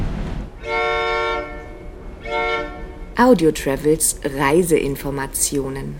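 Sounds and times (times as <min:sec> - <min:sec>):
passenger train rumbling along tracks through the Rocky Mountains in Canada: 0:00.0 - 0:03.9
passenger train horn long loud blasts: 0:00.6 - 0:03.2
speech: 0:03.2 - 0:05.9.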